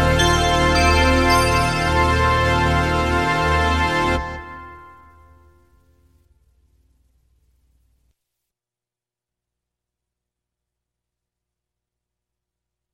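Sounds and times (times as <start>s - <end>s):
intro sound: 0.1s - 5.4s.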